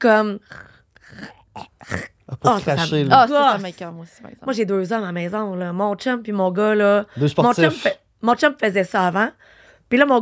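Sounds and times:
person imitating throat clearing: 0.0 - 3.0
speech: 0.0 - 10.2.

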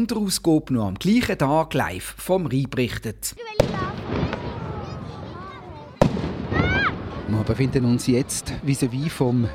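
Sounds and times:
speech: 0.0 - 4.4, 7.5 - 9.5
ceremonial Böller cannon salute shot: 3.6 - 7.6
busy outdoor crowd murmur with voices and chatter: 3.6 - 9.5.

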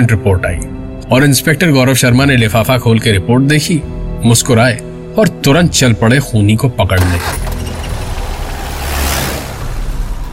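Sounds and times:
speech: 0.0 - 7.7
car engine rumbling as the vehicle drives along: 7.0 - 10.3.

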